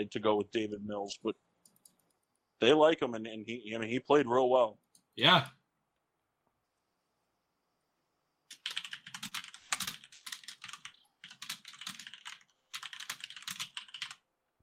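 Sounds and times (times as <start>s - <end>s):
speech: 0.0s - 1.5s, 2.6s - 5.6s
rapid crisp clicky computer keyboard typing: 1.6s - 2.4s, 8.5s - 14.2s.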